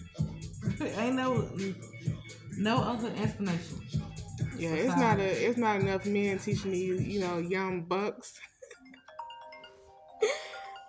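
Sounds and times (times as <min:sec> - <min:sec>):
speech: 0:00.8 - 0:04.0, 0:04.6 - 0:08.5
phone ringtone for an incoming call: 0:08.8 - 0:10.8.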